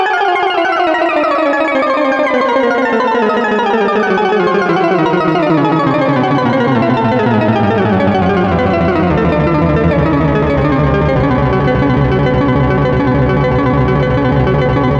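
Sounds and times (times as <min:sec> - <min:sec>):
cascading triple VCO synthesizer oscillator tones: 0:00.1 - 0:14.9.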